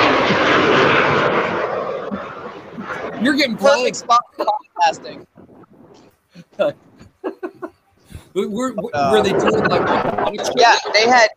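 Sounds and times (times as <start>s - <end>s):
jet aircraft passing overhead: 0.0s - 11.3s
speech: 3.2s - 5.3s, 6.6s - 6.9s, 8.4s - 11.3s
laughter: 3.3s - 5.1s, 6.4s - 11.3s.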